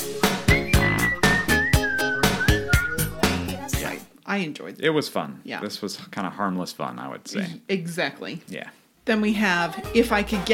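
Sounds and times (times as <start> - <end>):
clear sustained whistled melody: 0.0 - 3.6
bouncy rhythmic music track with steady percussive beats: 0.0 - 4.1, 9.2 - 10.5
speech: 4.3 - 10.5.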